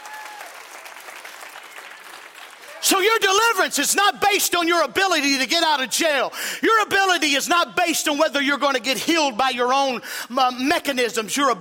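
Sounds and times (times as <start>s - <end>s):
church congregation clapping in praise: 0.0s - 3.5s
speech: 2.8s - 11.6s.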